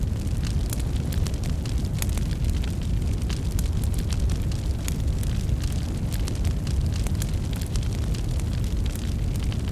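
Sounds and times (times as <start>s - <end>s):
big fire burning: 0.0s - 9.7s.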